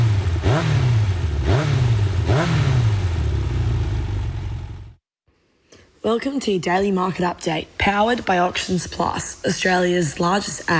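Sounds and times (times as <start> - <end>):
motorcycle engine revving then idling: 0.0 - 5.0
speech: 6.0 - 10.7.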